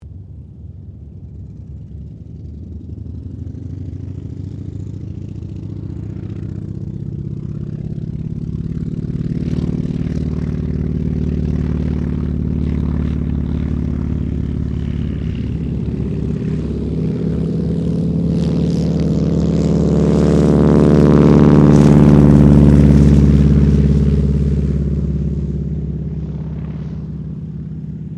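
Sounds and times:
Wirraway aircraft taking off from Ceres Winjeel: 0.0s - 28.1s.

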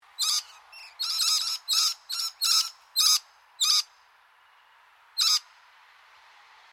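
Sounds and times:
scaly-breasted lorikeet screeching: 0.2s - 3.9s, 5.2s - 5.5s.

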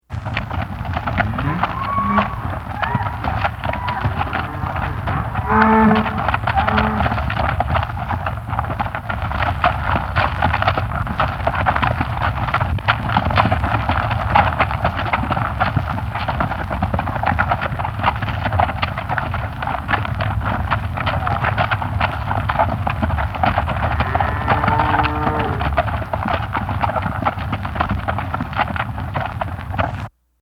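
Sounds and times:
cattle trudging: 0.1s - 30.1s
cows calling: 1.1s - 7.2s, 23.6s - 25.9s.

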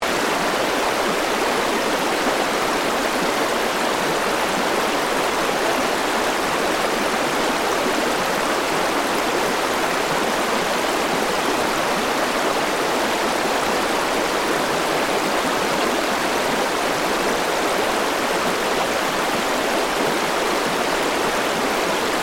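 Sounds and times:
river water flowing: 0.0s - 22.2s.

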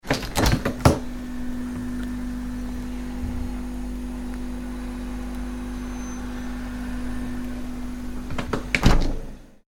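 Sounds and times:
refrigerator door being opened and closed: 0.0s - 2.0s, 7.3s - 9.4s
refrigerator drone: 0.0s - 9.6s.

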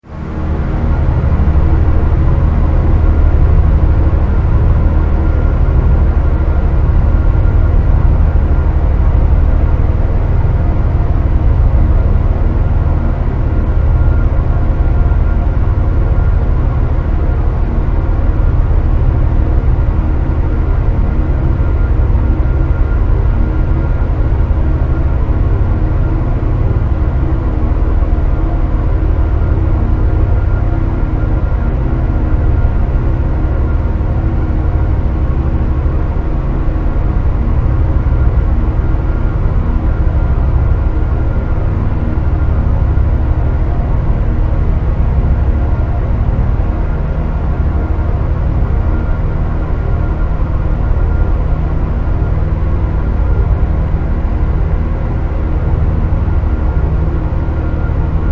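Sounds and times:
long horror synth strings drone: 0.0s - 58.3s.

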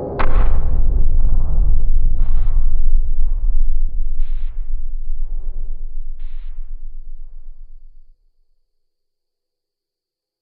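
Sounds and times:
sinister horror impact: 0.2s - 8.1s.

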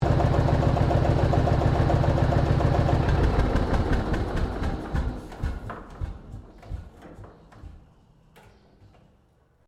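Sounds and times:
1954 Lance Bulldog Model Q old farm tractor engine shutting down: 0.0s - 5.7s.

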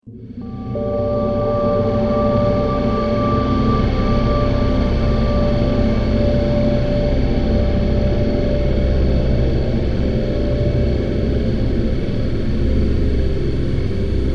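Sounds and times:
ominous futuristic space tension transition: 0.1s - 14.2s.

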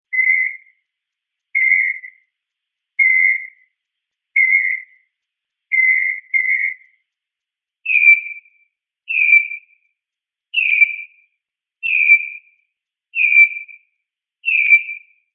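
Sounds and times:
mockingbird chirping: 0.0s - 0.8s, 1.6s - 2.3s, 3.0s - 5.1s, 5.7s - 7.0s, 7.8s - 9.8s, 10.5s - 11.2s, 11.8s - 12.6s, 13.2s - 13.8s, 14.4s - 15.2s.

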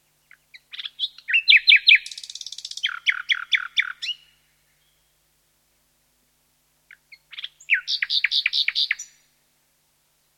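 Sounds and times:
common nightingale singing at night: 0.0s - 5.2s, 6.9s - 9.3s.

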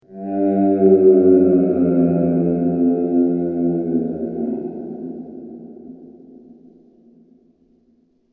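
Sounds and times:
deep fantasy monster groaning: 0.0s - 5.8s.

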